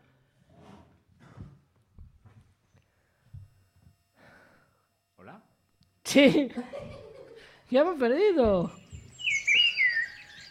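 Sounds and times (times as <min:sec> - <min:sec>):
speech: 0:06.1 - 0:06.9, 0:07.7 - 0:08.8
laughter: 0:06.1 - 0:07.6
person whistling a bird-like chirping call: 0:09.1 - 0:10.5.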